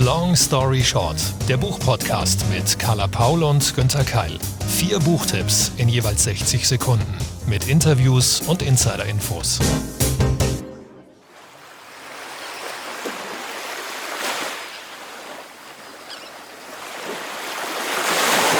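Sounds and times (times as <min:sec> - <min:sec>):
brief music: 0:00.0 - 0:11.2
speech: 0:00.1 - 0:10.0
sea waves breaking on a beach: 0:11.2 - 0:18.5.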